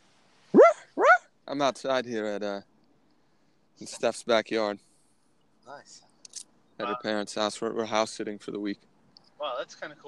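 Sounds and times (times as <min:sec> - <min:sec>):
dog barking: 0:00.5 - 0:01.3
speech: 0:01.5 - 0:02.7, 0:03.8 - 0:04.9, 0:05.7 - 0:06.1, 0:06.8 - 0:10.0.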